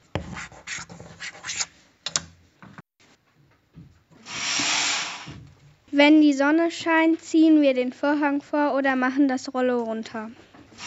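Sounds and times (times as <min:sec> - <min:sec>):
teacher writing with marker on a classroom whiteboard: 0:00.2 - 0:01.8
speech: 0:06.0 - 0:10.4.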